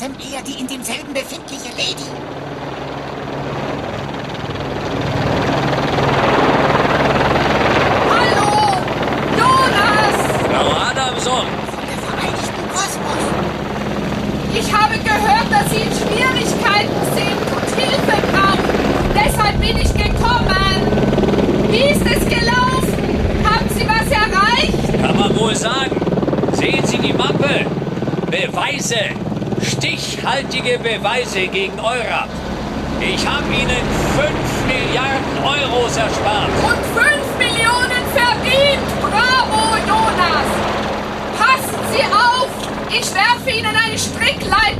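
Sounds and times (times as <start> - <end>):
speech: 0.0 - 2.8, 30.7 - 32.4, 33.0 - 37.1, 43.0 - 44.7
helicopter hovering overhead with rotor thrum and engine roar: 0.0 - 44.7.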